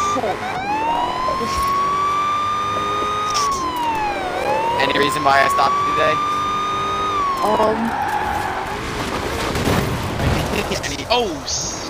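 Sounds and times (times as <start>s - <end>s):
speech: 0.2s - 0.7s, 1.4s - 1.8s, 4.9s - 6.3s, 7.4s - 8.1s, 10.8s - 11.8s
video game car tire skid squealing: 0.4s - 9.4s
video game car crashing rumble and scraping noise: 8.2s - 11.2s.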